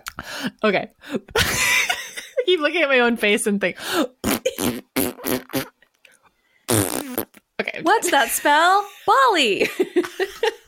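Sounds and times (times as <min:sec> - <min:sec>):
speech: 0:00.4 - 0:01.8, 0:02.5 - 0:04.7, 0:07.8 - 0:10.6
voice imitating a fart with buzzy sputtering bursts: 0:04.2 - 0:05.8, 0:06.7 - 0:07.5.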